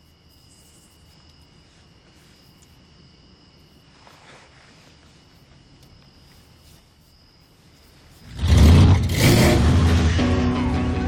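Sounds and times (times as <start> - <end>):
car engine revving in a drag race: 8.2 - 11.0.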